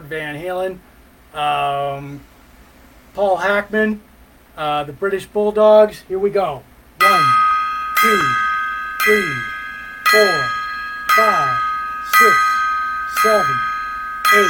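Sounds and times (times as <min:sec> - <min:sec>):
speech: 0:00.1 - 0:02.3, 0:03.2 - 0:07.4, 0:08.0 - 0:09.5, 0:10.1 - 0:10.6, 0:11.2 - 0:12.5, 0:13.2 - 0:13.7
metallic gong strikes: 0:07.0 - 0:14.4.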